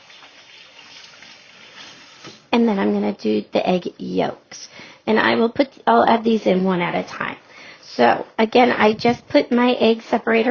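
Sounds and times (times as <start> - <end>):
hands rinsed under running water: 0.0 - 2.5
speech: 2.2 - 10.4.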